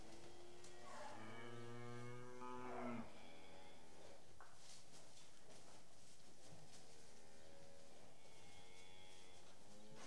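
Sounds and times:
background hiss: 0.0s - 10.0s
cattle mooing: 1.0s - 3.1s.

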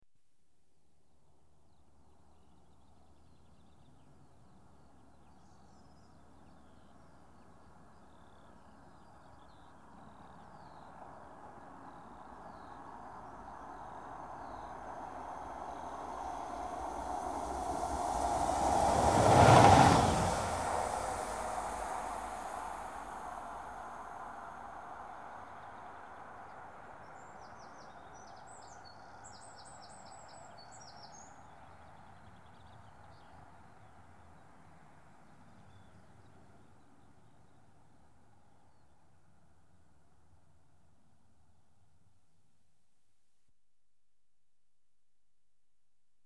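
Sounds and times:
single diesel train passing: 13.0s - 26.0s.

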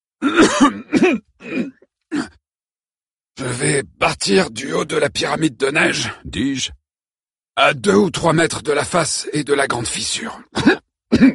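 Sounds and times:
person coughing: 0.2s - 2.4s, 10.5s - 11.3s
throat clearing: 0.2s - 2.4s, 10.5s - 11.3s
speech: 0.3s - 1.2s, 3.8s - 6.8s, 7.6s - 11.3s.

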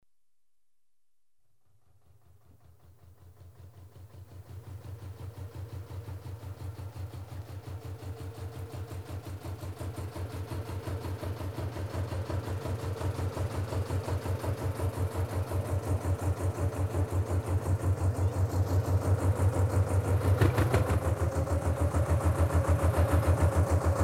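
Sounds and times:
boat approaching and stopping: 2.4s - 24.0s.

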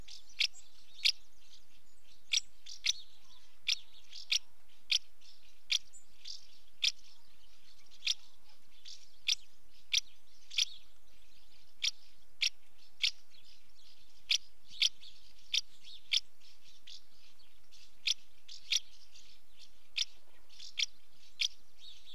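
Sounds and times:
female house martin calling at the nest entrance: 0.0s - 22.1s.

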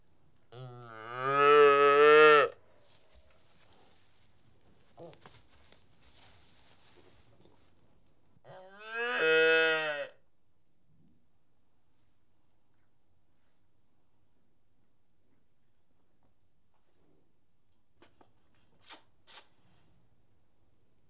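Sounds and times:
domestic cattle calf mooing while feeding: 0.5s - 2.6s, 8.5s - 10.2s
faint shuffling: 2.7s - 8.2s.

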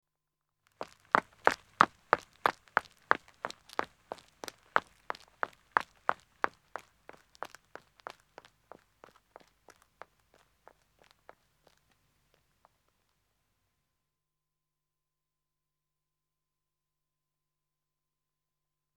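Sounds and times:
man running footsteps on a country road: 0.8s - 12.8s.

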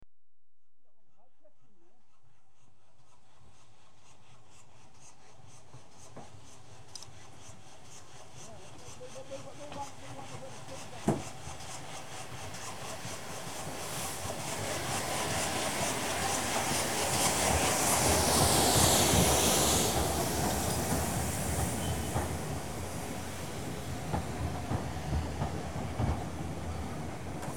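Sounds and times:
train arriving: 8.3s - 27.5s
train doors opening: 18.2s - 27.5s.

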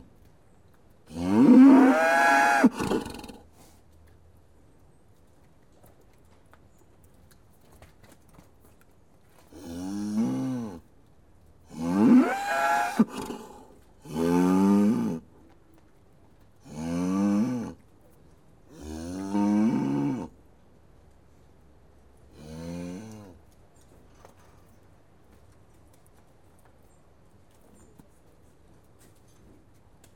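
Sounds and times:
cows mooing: 1.1s - 3.3s, 9.6s - 10.7s, 11.7s - 15.2s, 16.7s - 17.8s, 18.7s - 20.3s.

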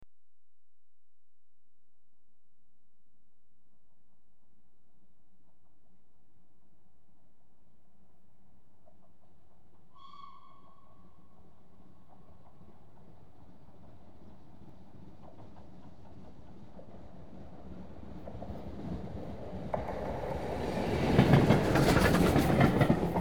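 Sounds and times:
high speed train passing: 11.4s - 23.1s.

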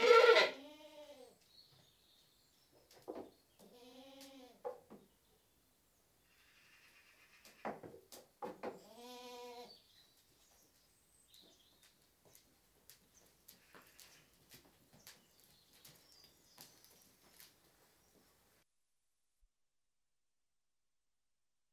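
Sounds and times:
British goat bleating: 0.0s - 1.4s, 3.6s - 4.6s, 6.3s - 7.7s, 8.8s - 9.7s.

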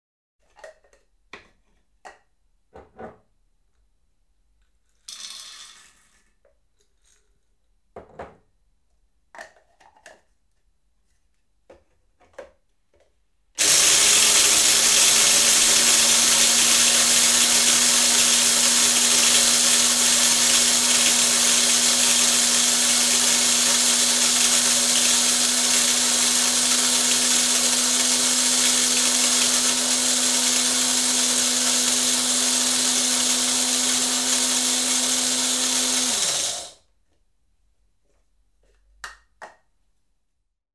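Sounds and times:
household coffee grinder: 13.6s - 36.8s.

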